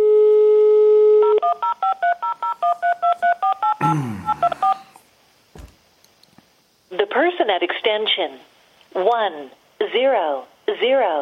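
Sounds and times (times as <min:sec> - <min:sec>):
telephone dial tone: 0:00.0 - 0:04.9
DTMF touch-tone beeps from a telephone keypad: 0:01.4 - 0:04.9
speech: 0:03.9 - 0:04.4, 0:07.5 - 0:11.2.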